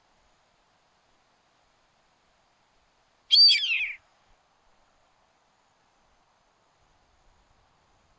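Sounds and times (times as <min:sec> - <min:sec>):
Yellow-headed Caracara Milvago chimachima chimachima screeching: 0:03.3 - 0:04.0.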